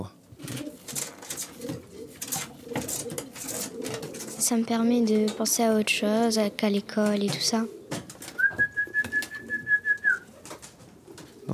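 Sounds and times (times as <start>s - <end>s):
pigeons cooing: 0.0s - 11.5s
speech: 4.5s - 7.8s
thin high whistle-like tone: 8.4s - 10.2s.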